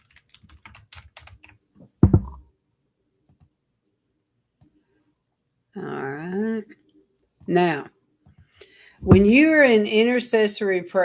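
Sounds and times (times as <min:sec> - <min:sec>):
typing on a computer keyboard: 0:00.0 - 0:01.6
speech: 0:07.5 - 0:07.9, 0:09.3 - 0:11.0.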